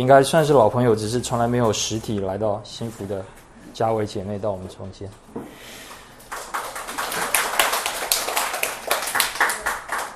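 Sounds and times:
speech: 0:00.0 - 0:05.8
people clapping at a church gathering: 0:06.2 - 0:10.1.

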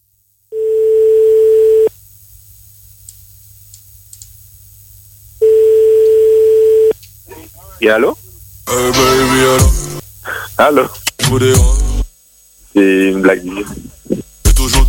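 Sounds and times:
telephone line tone beeps: 0:00.6 - 0:01.9, 0:05.4 - 0:06.9
speech: 0:07.8 - 0:09.8, 0:10.6 - 0:11.8, 0:12.8 - 0:13.8.

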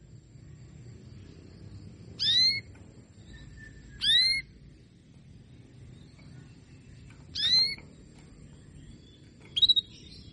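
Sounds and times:
faint low hum: 0:00.0 - 0:10.3
female Belgian canary call notes: 0:02.2 - 0:02.7, 0:03.4 - 0:04.5, 0:07.3 - 0:07.8.

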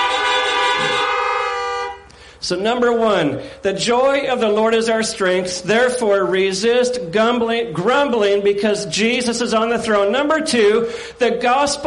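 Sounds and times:
car horns honking in response to a preacher's call: 0:00.0 - 0:02.3
speech: 0:02.4 - 0:11.8.

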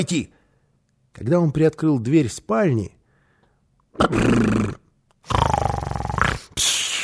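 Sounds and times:
speech: 0:00.0 - 0:00.4, 0:01.2 - 0:03.0, 0:04.0 - 0:05.4
loud snoring: 0:04.0 - 0:06.5.

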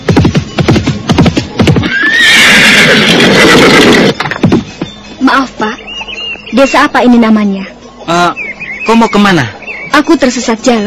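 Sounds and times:
hooves of a ridden horse clip-clopping: 0:00.0 - 0:05.0
horse whinnying long and shrill: 0:01.7 - 0:04.2
speech: 0:06.6 - 0:10.8.

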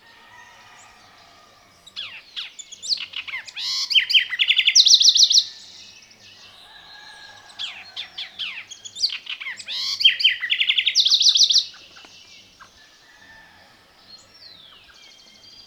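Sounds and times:
Black-crested Warbler Myiothlypis nigrocristata song: 0:00.0 - 0:15.6
faint background bird notes: 0:00.0 - 0:15.6.

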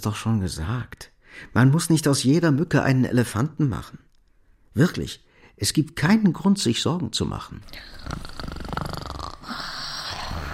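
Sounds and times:
speech: 0:00.0 - 0:04.0, 0:04.7 - 0:08.4
person snoring in bed at night: 0:07.7 - 0:10.5.

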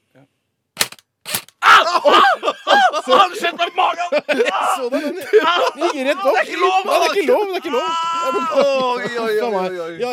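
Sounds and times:
MP5 submachine gun shots: 0:00.8 - 0:01.5
laughter: 0:01.6 - 0:10.1
speech: 0:03.1 - 0:10.1
person crying out: 0:04.4 - 0:08.7.

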